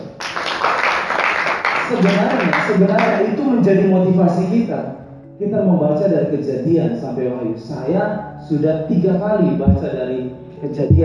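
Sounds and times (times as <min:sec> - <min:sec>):
audience applause: 0:00.2 - 0:02.6
speech: 0:01.9 - 0:11.0.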